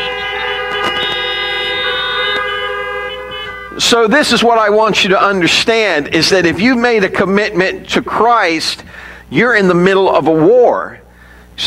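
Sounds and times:
many car horns honking in a parking lot at an outdoor church service: 0.0 - 4.9
speech: 3.8 - 11.0.

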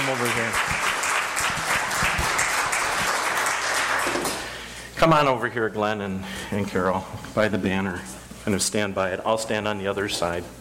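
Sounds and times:
crowd applauding: 0.0 - 4.6
speech: 5.0 - 10.5.

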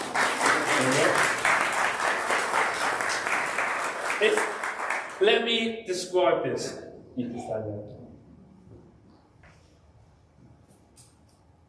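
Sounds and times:
crowd applauding: 0.0 - 5.3
speech: 4.2 - 4.5, 5.2 - 8.0.

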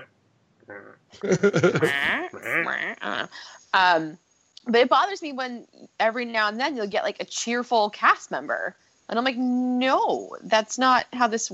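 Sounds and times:
speech: 0.7 - 11.5
laughter: 1.2 - 2.7
person's voice imitating goat bleats: 1.8 - 3.2.

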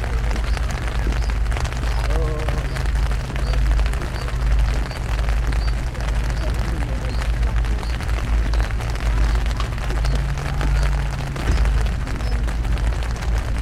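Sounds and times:
constant low rumble: 0.0 - 13.6
faint muffled voices: 0.0 - 13.6
rain pattering on a tent at a camping festival: 0.0 - 13.6.

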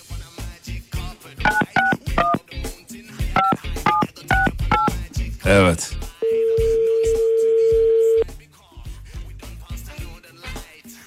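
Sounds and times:
telephone keypad tones dialing a number: 1.5 - 2.4, 3.4 - 5.0, 6.2 - 8.2
speech: 5.5 - 6.0.

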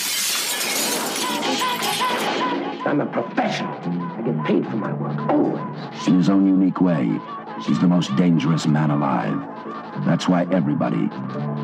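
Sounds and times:
glass shattering: 0.0 - 2.8
speech: 2.8 - 11.6.

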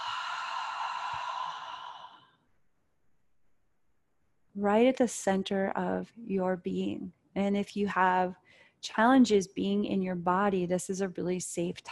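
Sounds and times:
person breathing in through the nose during a guided deep-breathing exercise: 0.0 - 2.4
slow airy exhale through the mouth during a guided deep-breathing exercise: 0.0 - 2.4
speech: 4.6 - 11.8.

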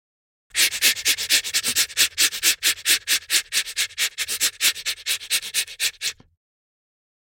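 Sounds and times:
manual toothbrush scrubbing against teeth: 0.5 - 6.2.

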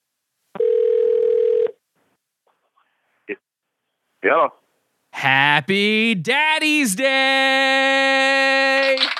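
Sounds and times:
telephone tone of a call being placed: 0.6 - 1.8
speech: 4.2 - 4.6, 5.2 - 9.1.

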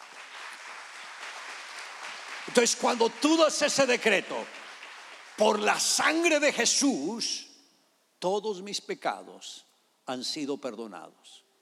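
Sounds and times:
audience applause: 0.0 - 5.8
speech: 2.5 - 4.6, 5.4 - 7.5, 8.2 - 11.4.

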